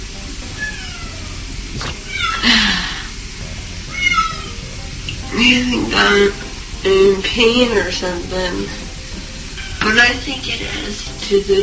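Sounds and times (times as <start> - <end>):
hum: 0.0 - 11.6
cat meowing: 0.6 - 3.0, 3.9 - 4.8, 9.6 - 9.9
speech: 5.4 - 8.8, 9.9 - 11.6.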